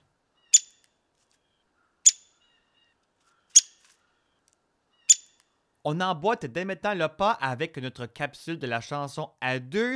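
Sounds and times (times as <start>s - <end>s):
single bird repeating a sharp high call: 0.0s - 0.8s, 2.0s - 2.5s, 3.4s - 3.9s, 5.0s - 5.4s
speech: 5.8s - 9.9s.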